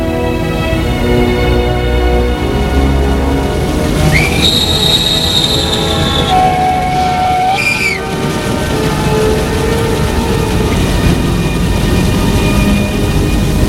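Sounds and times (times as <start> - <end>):
train rumbling at a railway station: 0.0 - 13.6
high squealing tones from a train: 4.1 - 8.2.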